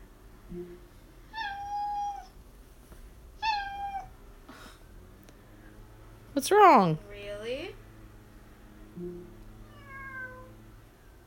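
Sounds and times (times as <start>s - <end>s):
speech: 0.5s - 0.9s, 6.4s - 7.6s
cat meowing: 1.3s - 2.3s, 3.4s - 4.1s, 9.7s - 10.6s.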